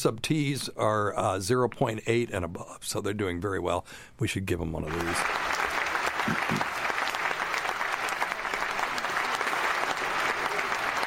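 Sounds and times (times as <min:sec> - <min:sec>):
speech: 0:00.0 - 0:06.7
canned crowd applause from a sound-effect button: 0:04.9 - 0:11.0.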